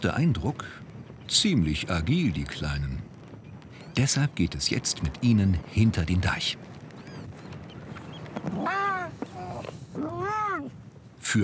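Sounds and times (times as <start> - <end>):
speech: 0.0 - 3.1, 4.0 - 6.7, 8.4 - 8.9, 10.0 - 11.4
young harbour seal pups crying: 8.0 - 10.8.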